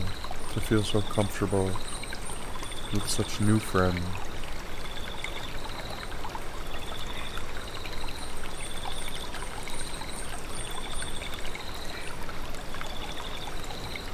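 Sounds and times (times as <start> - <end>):
stream trickling and babbling: 0.0 - 14.1
speech: 0.6 - 1.9, 2.9 - 4.2.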